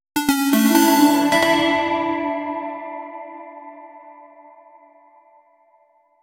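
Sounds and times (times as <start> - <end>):
medieval video game quest music: 0.2 - 3.0.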